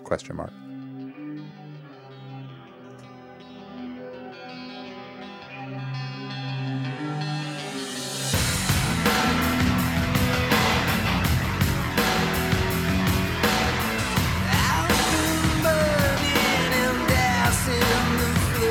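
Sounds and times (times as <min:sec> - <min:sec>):
speech: 0:00.1 - 0:00.6
sustained synth chord: 0:04.2 - 0:18.6
pounding industrial drums: 0:08.3 - 0:18.6
harsh processed vocals: 0:14.3 - 0:18.6.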